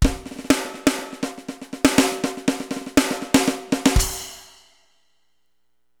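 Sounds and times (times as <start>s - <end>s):
breakbeat: 0.0s - 4.3s.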